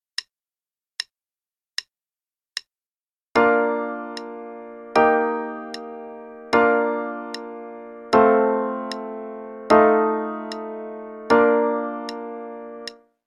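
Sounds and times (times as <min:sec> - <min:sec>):
B-flat major chord progression played legato with pedal: 0:03.4 - 0:13.0.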